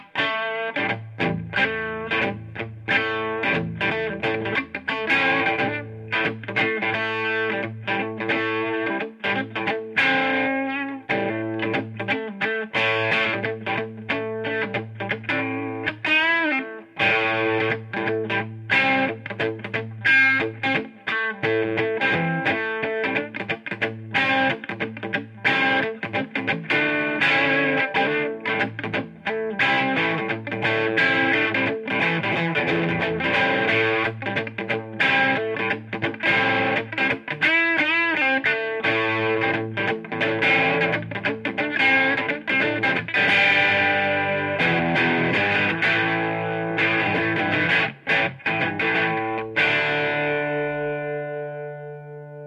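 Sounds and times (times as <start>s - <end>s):
distorted noodling: 0.0s - 51.9s.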